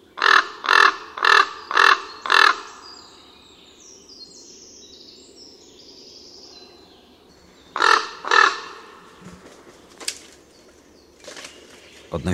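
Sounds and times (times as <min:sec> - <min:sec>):
common raven giving deep harsh croaks: 0:00.0 - 0:03.4, 0:07.4 - 0:11.2.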